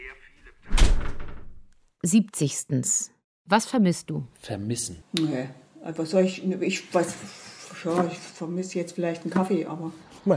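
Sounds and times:
heavy door closing thud: 0.6s - 1.6s
speech: 2.0s - 10.3s.

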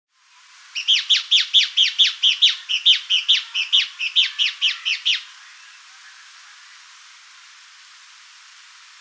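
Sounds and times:
Cnemotriccus fuscatus Fuscous Flycatcher calling with sharp chip notes: 0.7s - 5.8s.

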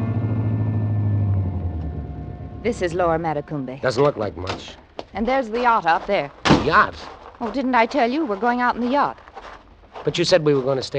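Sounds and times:
car engine rumbling as the car pulls off the highway into a shed: 0.0s - 10.0s
speech: 2.6s - 9.2s, 10.0s - 10.9s.

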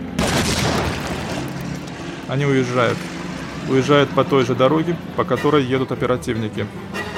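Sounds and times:
grenade exploding in a basement: 0.2s - 1.8s
speech: 2.3s - 7.0s.

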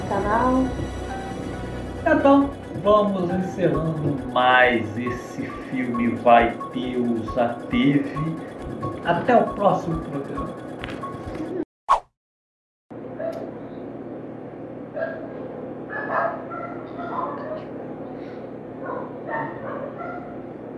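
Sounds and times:
speech: 0.1s - 1.0s, 2.0s - 10.7s
neighbour's dogs barking: 14.9s - 17.8s, 18.8s - 20.6s.

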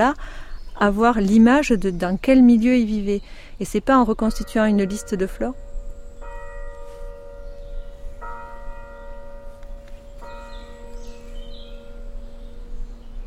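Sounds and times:
speech: 0.0s - 5.7s
chapel bell ringing in a clifftop cave, echoing through forest: 4.3s - 12.8s.

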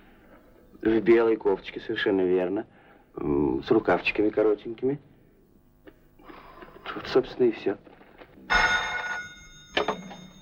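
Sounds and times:
speech: 0.8s - 5.1s, 6.9s - 7.9s
telephone ringing at a pharmacy: 8.5s - 10.4s.

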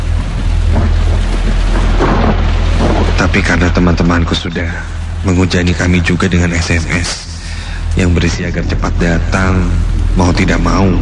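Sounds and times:
deep thunder rumbling: 0.0s - 11.0s
heavy rain: 0.0s - 11.0s
speech: 3.3s - 7.3s, 8.0s - 11.0s.

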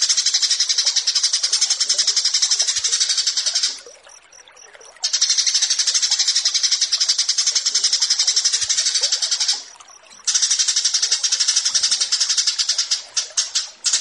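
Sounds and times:
bush lark song: 0.0s - 13.9s.

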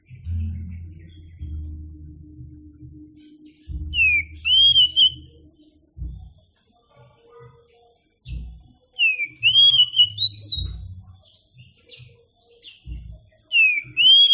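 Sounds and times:
low rumbling hum: 0.0s - 6.4s
Oriental magpie-robin singing clear whistled phrases: 3.4s - 5.4s, 7.7s - 14.3s.

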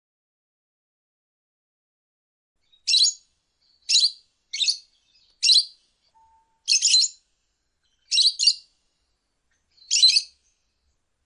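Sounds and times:
lovebird giving harsh scratchy ngekek bait song chirps: 2.6s - 9.1s, 9.7s - 10.6s.

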